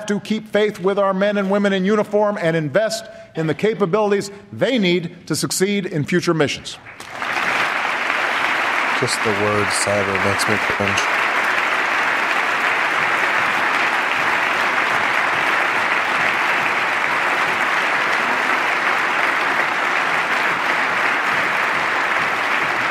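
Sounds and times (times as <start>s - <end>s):
speech: 0.1s - 7.2s, 9.0s - 11.1s
sustained applause from a large audience: 7.0s - 22.9s.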